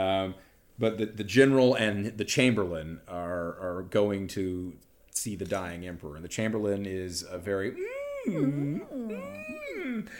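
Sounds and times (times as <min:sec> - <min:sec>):
speech: 0:00.0 - 0:10.1
voice imitating a creature's whimpering whine: 0:07.7 - 0:10.1.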